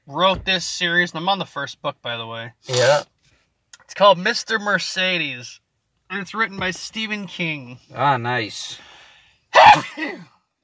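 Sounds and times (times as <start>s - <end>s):
speech: 0.1s - 3.1s, 3.9s - 9.0s, 9.6s - 10.3s
person sneezing: 2.7s - 3.0s, 9.5s - 10.4s.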